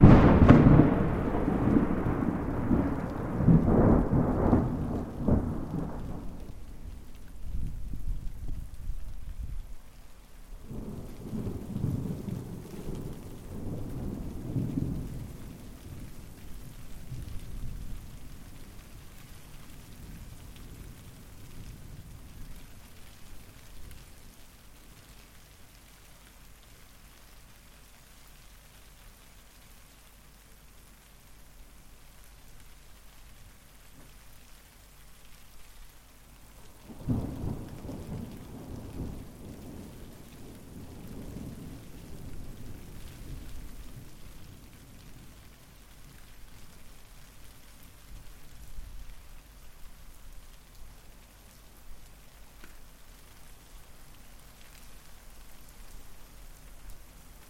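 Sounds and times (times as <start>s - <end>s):
thunder: 0.0s - 8.6s, 10.7s - 19.0s, 36.8s - 45.4s
rain: 0.0s - 57.4s.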